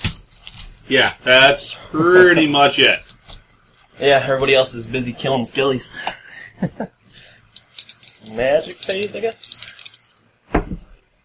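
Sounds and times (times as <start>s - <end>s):
speech: 0.9s - 3.1s, 4.0s - 7.3s, 8.2s - 9.5s
dice rolled on a table in a tabletop game: 7.6s - 10.2s.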